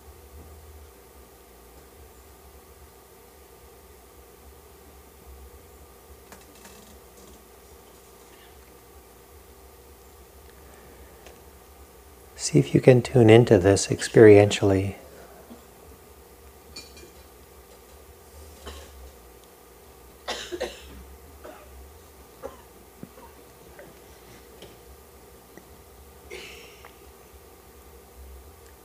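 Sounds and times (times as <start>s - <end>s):
speech: 12.4s - 15.0s
coughing: 18.6s - 19.1s, 20.2s - 21.8s, 22.4s - 23.9s, 26.3s - 27.0s.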